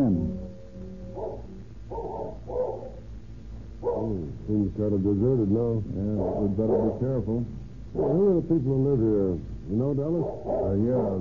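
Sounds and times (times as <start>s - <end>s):
low steady hum: 0.0s - 11.1s
cur dog barking fiercely at a ranch: 1.2s - 3.0s, 3.8s - 4.1s, 6.2s - 7.0s, 8.0s - 8.2s, 10.2s - 11.1s
speech: 4.5s - 11.1s.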